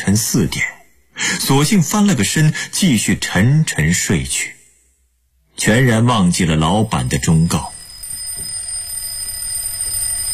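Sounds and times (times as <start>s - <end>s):
speech: 0.1s - 4.6s, 5.6s - 7.8s
alarm clock ringing harshly: 6.8s - 10.3s.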